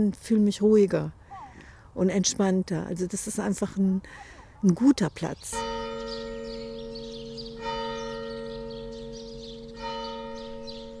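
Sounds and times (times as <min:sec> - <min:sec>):
speech: 0:00.0 - 0:01.2, 0:02.0 - 0:06.2
church bell tolling with rich humming resonance: 0:05.5 - 0:10.9.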